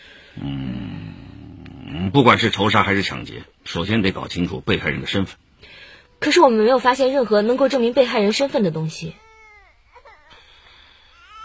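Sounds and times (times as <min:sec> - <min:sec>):
speech: 0:00.4 - 0:00.7, 0:02.1 - 0:09.2
baby crying: 0:09.2 - 0:10.4, 0:11.2 - 0:11.4.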